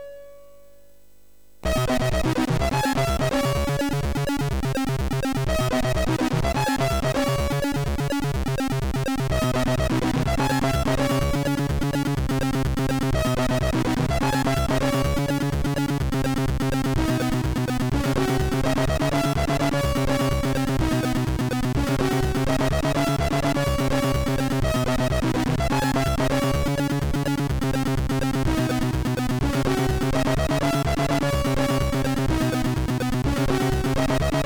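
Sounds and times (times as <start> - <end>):
rave techno music on MOS6581R3 sound chip: 1.7 - 34.4.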